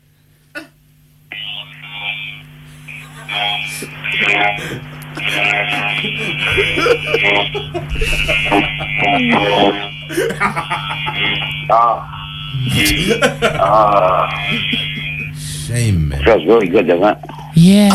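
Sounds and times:
laughter: 0:02.7 - 0:17.5
speech: 0:03.8 - 0:14.8, 0:15.7 - 0:17.9
electric shaver buzzing while shaving chest hair: 0:04.6 - 0:15.4.

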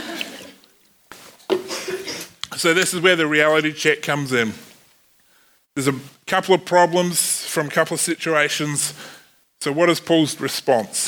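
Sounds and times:
soft slurping of water: 0:00.0 - 0:00.9
speech: 0:02.6 - 0:04.7, 0:05.8 - 0:11.0.

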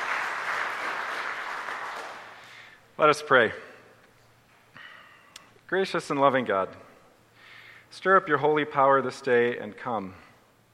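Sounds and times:
audience applauding the musicians: 0:00.0 - 0:02.6
speech: 0:03.0 - 0:03.7, 0:05.7 - 0:06.9, 0:07.9 - 0:10.2.

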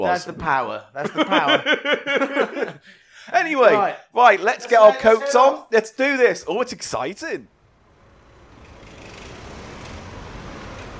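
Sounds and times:
speech: 0:00.0 - 0:07.5
laughter: 0:01.0 - 0:02.9
steady road traffic at a bus stop: 0:07.5 - 0:10.9.

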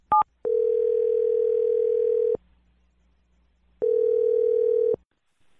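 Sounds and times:
telephone ringing tones: 0:00.1 - 0:02.4, 0:03.8 - 0:05.0.

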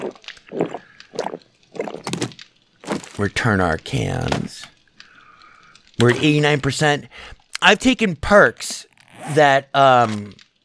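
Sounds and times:
person gulping while drinking water: 0:00.0 - 0:03.2, 0:08.9 - 0:10.4
speech: 0:03.2 - 0:04.6, 0:06.0 - 0:10.4.

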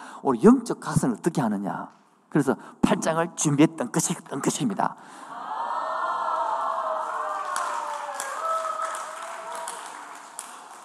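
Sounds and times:
speech: 0:00.2 - 0:05.3
audience applauding: 0:06.3 - 0:10.8.

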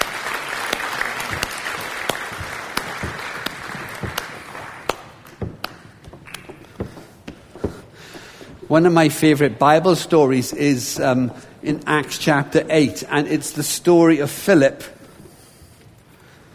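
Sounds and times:
audience clapping: 0:00.0 - 0:06.8
speech: 0:08.7 - 0:15.0.

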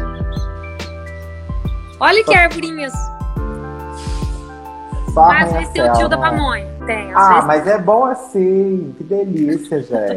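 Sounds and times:
small birds chirping outdoors: 0:00.0 - 0:02.1, 0:09.4 - 0:10.1
speech: 0:02.0 - 0:03.1, 0:05.2 - 0:10.1.

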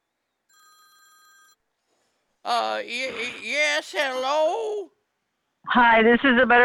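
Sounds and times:
telephone ringing with a bright electronic trill: 0:00.5 - 0:01.7
speech: 0:02.4 - 0:05.0, 0:05.7 - 0:06.6.

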